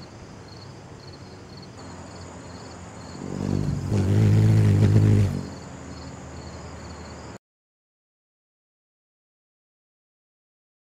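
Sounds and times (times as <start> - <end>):
hummingbird wings humming: 1.8 - 7.3.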